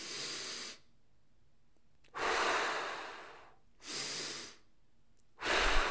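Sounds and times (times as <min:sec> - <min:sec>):
person doing slow box breathing: 0:00.0 - 0:00.9, 0:02.1 - 0:04.7, 0:05.4 - 0:05.9.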